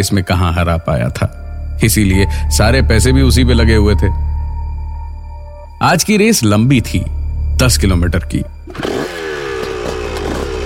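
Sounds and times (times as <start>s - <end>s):
speech: 0.0s - 4.3s, 5.8s - 9.2s
motorcycle engine revving hard at the start of a race: 8.7s - 10.6s.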